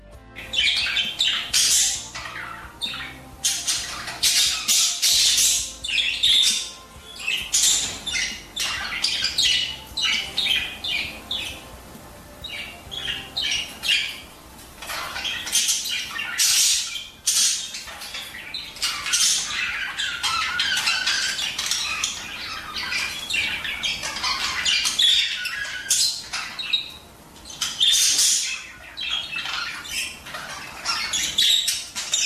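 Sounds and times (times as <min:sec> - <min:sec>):
budgerigars squawking and chirping: 0:00.4 - 0:32.2.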